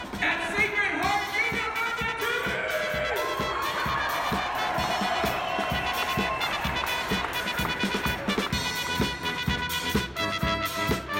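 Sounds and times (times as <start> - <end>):
rhythmic thumps in a basketball arena: 0.0 - 11.0
large indoor crowd of students, parents and siblings cheering in a basketball arena: 0.6 - 8.7.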